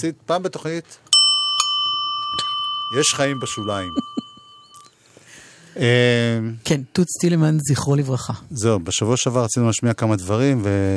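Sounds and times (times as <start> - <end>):
speech: 0.0 - 1.1, 2.3 - 4.2, 5.8 - 10.9
bicycle bell ringing: 1.2 - 4.9.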